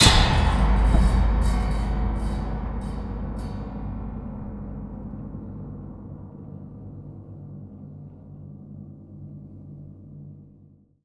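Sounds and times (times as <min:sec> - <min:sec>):
cinematic metal impacts: 0:00.0 - 0:06.2.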